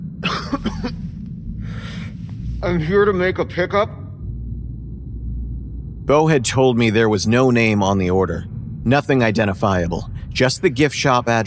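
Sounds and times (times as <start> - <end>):
low rumble: 0.0 - 11.4
harsh cough: 0.2 - 1.0
breathy exhale: 0.8 - 2.6
speech: 2.6 - 4.0, 6.1 - 11.4.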